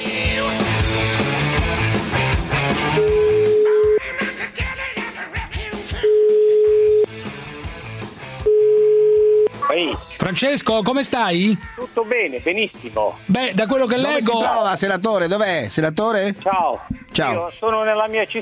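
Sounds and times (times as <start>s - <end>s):
busy music: 0.0s - 18.3s
telephone ringback tone beeps: 3.0s - 4.0s, 6.1s - 7.1s, 8.5s - 9.5s
speech: 10.4s - 18.3s.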